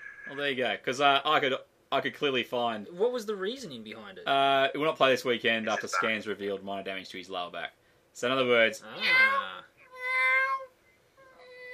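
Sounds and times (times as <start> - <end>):
speech: 0.3 - 9.6
person imitating cat meows: 9.0 - 9.6.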